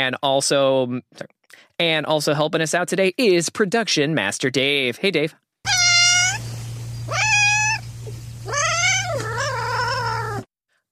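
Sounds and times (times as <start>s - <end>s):
speech: 0.0s - 5.4s
steady low electrical hum: 5.7s - 10.4s
cat meowing: 5.7s - 10.5s.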